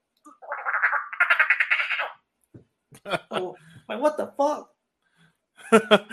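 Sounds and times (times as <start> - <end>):
person imitating a duck quack: 0.4 - 2.1
laughter: 3.0 - 3.6, 5.6 - 6.1
speech: 3.1 - 4.7.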